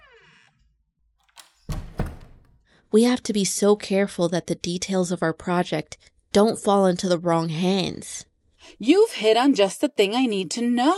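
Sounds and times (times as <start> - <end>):
door onto a hallway closing with a creak: 0.0 - 0.7, 1.3 - 2.6
door latching thunk against the frame: 1.3 - 2.6
speech: 2.9 - 10.9.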